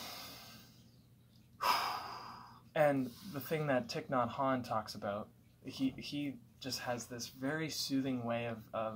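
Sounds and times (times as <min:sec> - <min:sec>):
slow meditative breathing: 0:00.0 - 0:01.0, 0:01.6 - 0:03.5
speech: 0:02.8 - 0:08.9.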